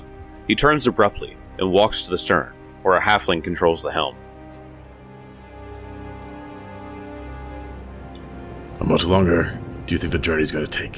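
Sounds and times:
speech: 0.5 - 4.2, 8.9 - 10.9
heavy rain downpour: 2.5 - 10.9.

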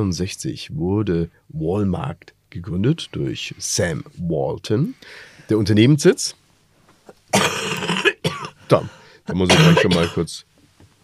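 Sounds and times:
speech: 0.0 - 6.4, 8.7 - 10.5
faint breath: 5.0 - 5.5, 8.8 - 9.3
person coughing: 7.3 - 8.9, 9.5 - 10.3.

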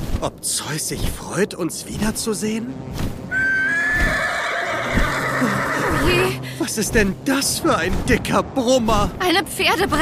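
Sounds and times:
speech: 0.2 - 3.3, 5.4 - 10.0
horse neighing in a long loud whinny: 3.3 - 6.4.

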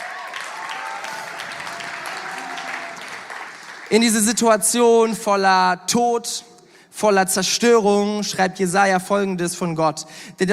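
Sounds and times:
room full of people applauding: 0.0 - 4.1
speech: 3.9 - 10.5.

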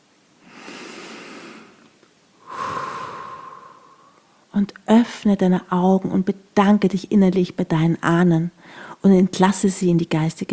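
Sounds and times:
person taking a deep breath in and out: 0.4 - 1.8, 2.4 - 4.4
speech: 4.6 - 10.5.

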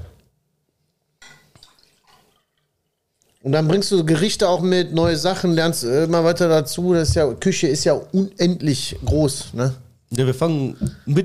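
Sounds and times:
drinking water pouring into a glass: 1.3 - 2.7
speech: 3.4 - 11.2.

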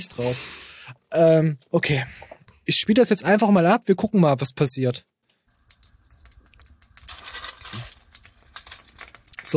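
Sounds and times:
speech: 0.0 - 5.1
edible toothpicks snack being chewed: 5.3 - 9.5.

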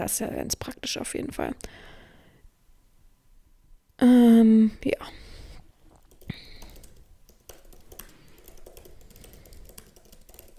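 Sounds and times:
speech: 0.0 - 1.9, 4.0 - 5.2
typing a reply on a computer keyboard: 6.0 - 10.5.

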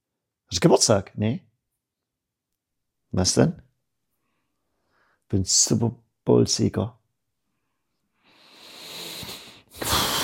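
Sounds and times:
speech: 0.5 - 1.5, 3.1 - 3.6, 5.3 - 7.0
heavy huffing breath: 8.4 - 10.2.

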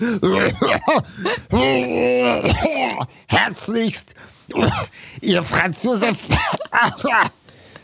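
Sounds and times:
voiced groaning hack: 0.0 - 3.1
speech: 0.0 - 7.4
person coughing: 0.3 - 1.4, 2.4 - 3.0, 4.5 - 5.0, 6.2 - 7.4.

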